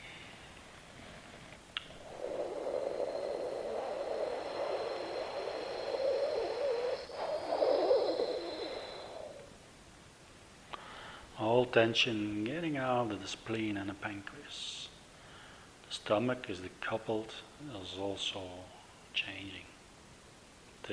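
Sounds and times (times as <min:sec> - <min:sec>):
soft breathy hooing exhale through rounded lips during a breathing exercise: 0:00.0 - 0:09.5, 0:10.7 - 0:11.3, 0:15.2 - 0:15.8
speech: 0:11.7 - 0:14.9, 0:15.9 - 0:19.7.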